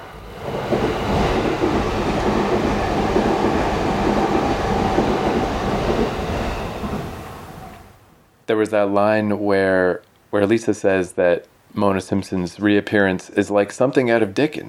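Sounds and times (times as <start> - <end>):
train passing with rattling wheels: 0.0 - 8.1
speech: 8.6 - 14.6.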